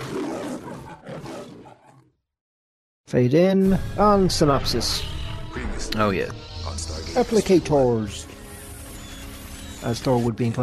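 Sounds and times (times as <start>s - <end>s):
lion roaring with a rough rumbling growl: 0.0s - 2.2s
speech: 3.1s - 5.1s, 5.8s - 8.3s, 9.8s - 10.6s.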